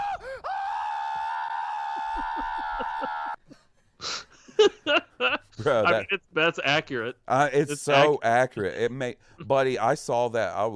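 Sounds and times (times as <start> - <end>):
man screaming in a played video clip: 0.0 - 3.4
speech: 5.6 - 10.7.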